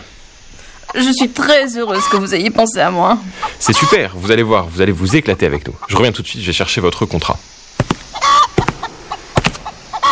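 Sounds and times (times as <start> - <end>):
chickens clucking in a poultry breeder's barn: 0.0 - 10.1
chickens squawking in a poultry breeder's barn: 0.7 - 6.1, 7.4 - 10.1
speech: 0.9 - 7.5.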